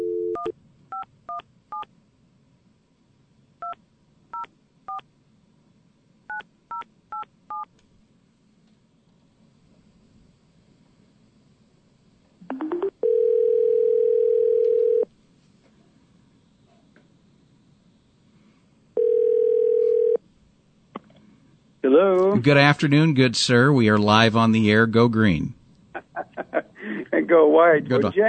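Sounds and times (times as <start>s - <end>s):
phone ringing tone: 0.0s - 1.0s, 12.4s - 15.1s, 19.0s - 20.2s
speech: 22.0s - 25.6s, 27.3s - 28.2s
laughter: 25.9s - 27.3s.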